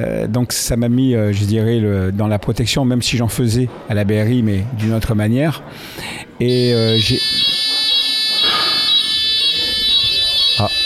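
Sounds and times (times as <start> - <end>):
speech: 0.0 - 7.7, 10.6 - 10.8
fire alarm blaring with high-pitched tone: 6.5 - 10.8.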